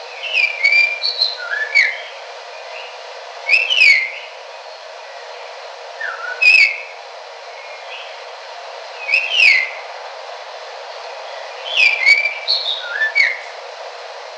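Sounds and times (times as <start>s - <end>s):
constant background noise in Kinshasa: 0.0s - 14.3s
red-tailed palm thrush singing in Kinshasa at night: 0.1s - 2.9s, 3.5s - 4.3s, 9.0s - 9.8s, 11.5s - 13.5s.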